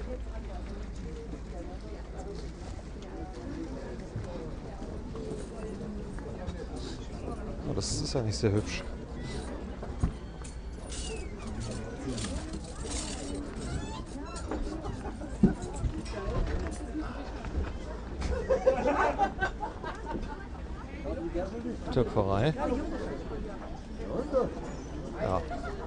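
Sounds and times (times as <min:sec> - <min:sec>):
crowd murmur of many voices at a Christmas market in Cologne city centre: 0:00.0 - 0:25.8
laughter: 0:14.6 - 0:16.0, 0:18.2 - 0:20.9, 0:25.2 - 0:25.8.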